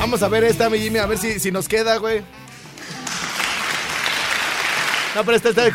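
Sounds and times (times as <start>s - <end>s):
speech: 0.1s - 2.4s, 5.1s - 5.7s
audience applause in an auditorium: 2.6s - 5.7s.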